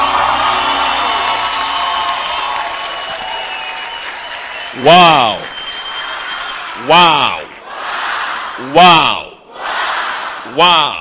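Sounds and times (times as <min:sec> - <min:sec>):
large crowd clapping hands: 0:00.0 - 0:08.6
speech: 0:04.8 - 0:05.4, 0:06.9 - 0:07.4, 0:08.6 - 0:09.2, 0:10.6 - 0:10.9.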